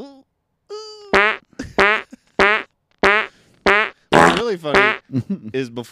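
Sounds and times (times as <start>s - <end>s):
comedic fart sound effect: 1.2s - 5.0s
speech: 4.5s - 5.9s.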